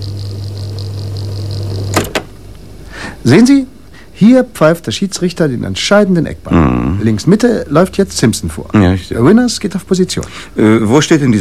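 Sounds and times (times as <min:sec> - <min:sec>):
video recorder fast-forwarding a football match recording: 0:00.0 - 0:02.7
sharp clunks of a video recorder: 0:01.9 - 0:02.4
speech: 0:03.2 - 0:11.4.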